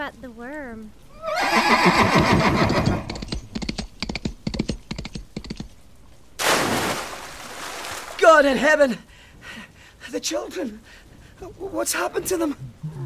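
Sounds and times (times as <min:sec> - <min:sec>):
speech: 0:00.0 - 0:02.9, 0:08.4 - 0:09.1, 0:10.1 - 0:12.7
loud wavering horse whinny: 0:01.1 - 0:03.4
quick sharp clattering clicks: 0:02.6 - 0:05.8.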